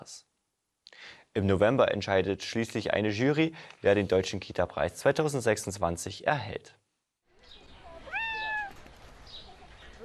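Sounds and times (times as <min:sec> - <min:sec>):
speech: 0:00.0 - 0:00.3, 0:01.4 - 0:06.8
faint outdoor noise at a zoo: 0:00.0 - 0:10.0
cat meowing at a zoo: 0:07.9 - 0:08.8.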